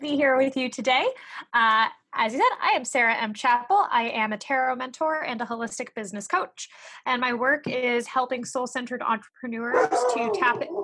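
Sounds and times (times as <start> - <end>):
speech: 0.0 - 10.8
dog barking: 9.8 - 10.8.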